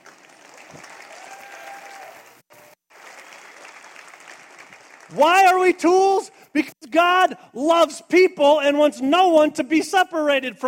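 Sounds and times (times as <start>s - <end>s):
church audience applauding: 0.0s - 5.6s
speech: 5.1s - 10.6s.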